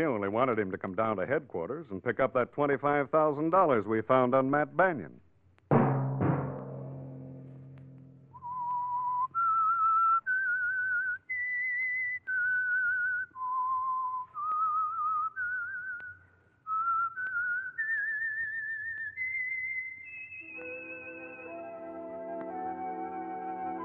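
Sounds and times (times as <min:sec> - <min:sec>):
speech: 0:00.0 - 0:05.2
solo whistle carrying a slow wavering tune: 0:08.3 - 0:23.8
orchestral music: 0:20.6 - 0:23.8.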